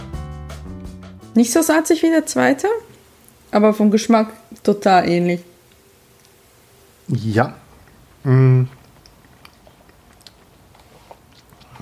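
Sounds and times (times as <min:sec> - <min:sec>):
speech: 0:01.3 - 0:02.9, 0:03.5 - 0:05.5, 0:07.1 - 0:07.6, 0:08.2 - 0:08.8
chewing a firm food sample during a tasting: 0:07.8 - 0:11.8.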